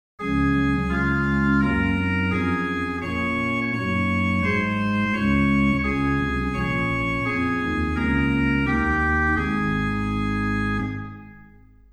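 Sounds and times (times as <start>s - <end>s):
middle-sized Silbermann church organ with flute, cornett and subbass stops: 0.2s - 11.9s.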